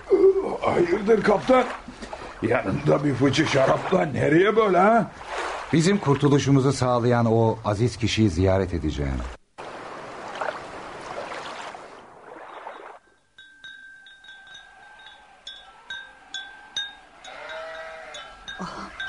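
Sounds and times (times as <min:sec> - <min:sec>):
speech: 0:00.7 - 0:09.4
sheep bleating in the garden of a dervish lodge: 0:14.8 - 0:19.0.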